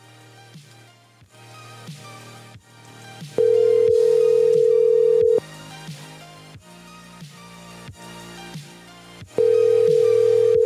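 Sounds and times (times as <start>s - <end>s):
music: 0.0s - 10.6s
phone outgoing ringback tone: 3.4s - 5.4s, 9.4s - 10.6s.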